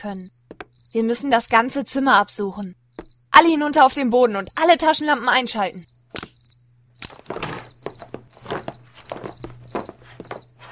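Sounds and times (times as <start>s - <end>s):
speech: 0.0s - 5.9s
low hum: 0.0s - 10.7s
cricket chirping indoors: 0.1s - 1.0s, 2.9s - 3.3s, 5.7s - 10.6s
footsteps moving around the room: 0.5s - 0.8s, 7.1s - 10.7s
shuffling thumps: 0.5s - 0.8s, 7.1s - 10.7s.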